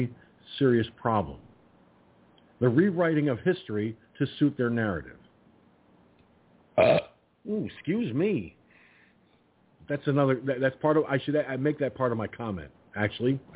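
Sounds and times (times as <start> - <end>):
speech: 0.0 - 1.5, 2.6 - 5.2, 6.8 - 8.6, 9.9 - 13.5
loud burp: 6.8 - 7.2.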